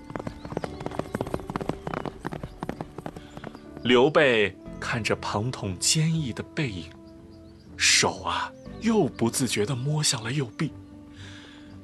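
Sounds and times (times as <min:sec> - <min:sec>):
horse hooves clip-clopping as a rider sets off: 0:00.0 - 0:04.1
speech: 0:03.8 - 0:07.0, 0:07.8 - 0:10.8.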